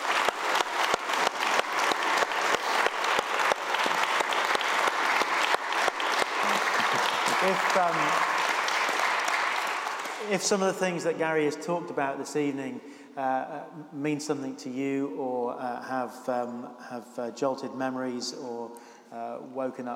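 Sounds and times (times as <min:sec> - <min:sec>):
audience applause: 0:00.0 - 0:10.9
speech: 0:07.4 - 0:08.3, 0:10.3 - 0:19.9.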